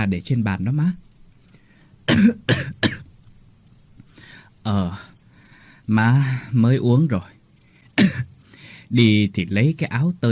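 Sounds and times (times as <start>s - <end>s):
speech: 0.0s - 1.1s, 2.1s - 3.0s, 4.6s - 5.1s, 5.9s - 7.3s, 8.9s - 10.2s
crickets and other insects chirping: 0.0s - 10.2s
sick woman coughing: 2.1s - 3.1s, 8.0s - 8.3s.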